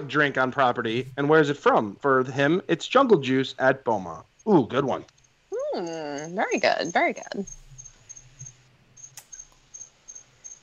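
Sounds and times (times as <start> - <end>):
speech: 0.0 - 7.6
faint low hum: 0.0 - 10.6
crickets chirping: 2.2 - 10.6.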